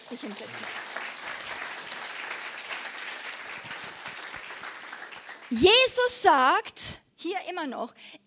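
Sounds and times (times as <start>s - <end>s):
audience applause: 0.0s - 5.9s
speech: 0.1s - 1.0s, 5.5s - 8.2s.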